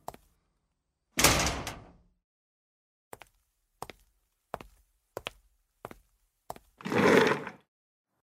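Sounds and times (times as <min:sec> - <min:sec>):
door closing with a whooshing thud: 0:01.2 - 0:02.0.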